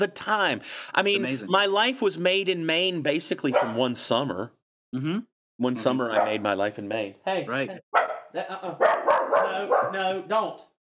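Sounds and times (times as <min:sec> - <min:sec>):
speech: 0:00.0 - 0:10.7
dog barking: 0:03.5 - 0:03.8, 0:06.1 - 0:06.5, 0:07.9 - 0:10.2.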